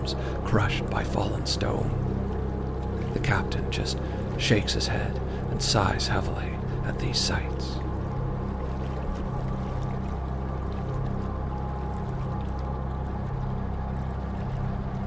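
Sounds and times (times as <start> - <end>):
coal-powered fishing boat engine chugging: 0.0 - 15.0
faint water wash: 0.0 - 15.0
speech: 0.1 - 2.2, 3.1 - 7.8.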